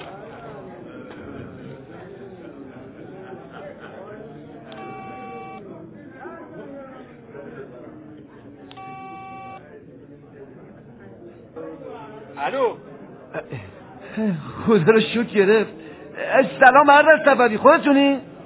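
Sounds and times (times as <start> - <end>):
murmuring voices: 0.0 - 16.3
coin payphone electronic beeps while dialing a number: 4.8 - 5.6, 8.8 - 9.6
speech: 12.4 - 12.8, 13.4 - 18.3.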